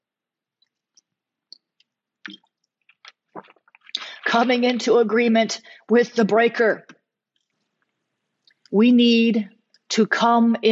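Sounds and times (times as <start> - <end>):
mouth clicks and smacks: 0.6 - 4.2, 7.3 - 8.8
speech: 2.3 - 2.5, 3.4 - 3.6, 4.3 - 6.9, 8.7 - 10.7
person slurping and swallowing water: 2.3 - 4.2.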